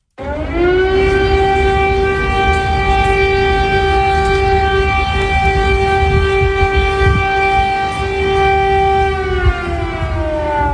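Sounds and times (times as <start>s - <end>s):
air raid warning siren wailing in Kyiv Ukraine: 0.0s - 10.7s
faint city noise in Kyiv: 0.0s - 10.7s.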